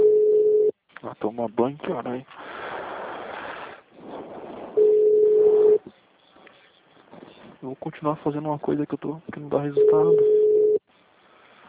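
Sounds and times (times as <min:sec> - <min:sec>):
telephone ringback tone while placing a call: 0:00.0 - 0:00.7, 0:04.8 - 0:05.8, 0:09.8 - 0:10.8
speech: 0:01.1 - 0:02.6, 0:07.6 - 0:10.4.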